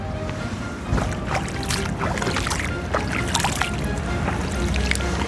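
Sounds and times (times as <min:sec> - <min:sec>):
small stream babbling in Arnhem: 0:00.1 - 0:05.2.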